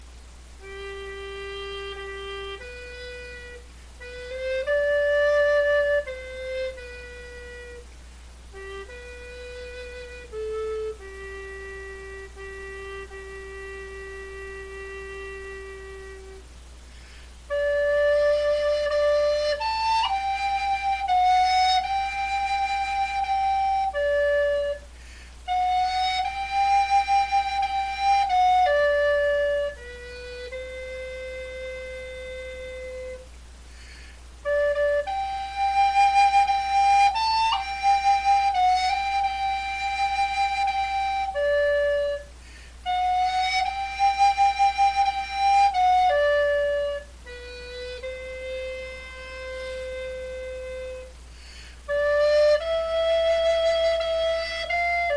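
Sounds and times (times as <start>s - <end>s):
alto recorder lullaby: 0.0s - 55.1s.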